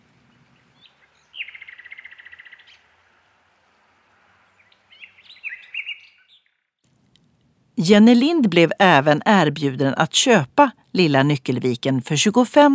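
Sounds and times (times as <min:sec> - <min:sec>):
nightingale singing: 0:00.0 - 0:03.0, 0:04.4 - 0:06.6
speech: 0:07.8 - 0:12.7.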